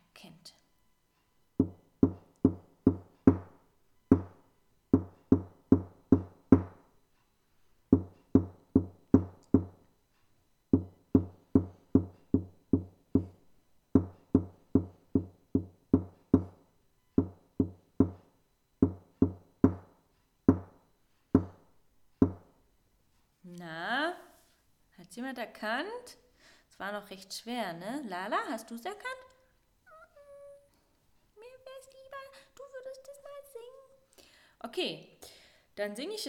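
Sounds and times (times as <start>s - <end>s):
knuckles knocking a song rhythm on a tabletop: 1.6s - 4.4s, 5.0s - 6.8s, 8.0s - 9.8s, 10.8s - 13.4s, 14.0s - 16.6s, 17.2s - 20.8s, 21.4s - 21.6s, 22.2s - 22.5s
speech: 25.1s - 29.3s, 34.8s - 35.1s, 35.8s - 36.2s.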